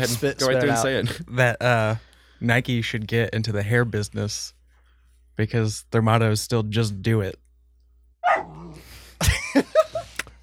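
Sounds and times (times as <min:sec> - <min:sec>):
speech: 0:00.0 - 0:04.6, 0:05.4 - 0:07.4
dog barking: 0:08.2 - 0:08.7
laughter: 0:09.2 - 0:10.3.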